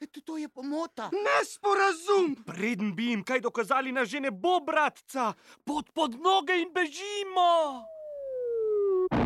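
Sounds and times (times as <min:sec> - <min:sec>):
speech: 0:00.3 - 0:07.9
high whistle sliding downward: 0:07.9 - 0:09.1.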